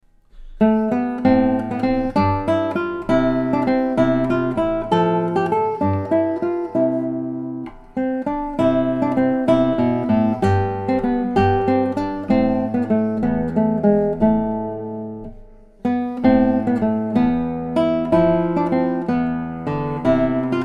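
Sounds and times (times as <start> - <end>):
Spanish dance played on guitars: 0.4 - 20.6.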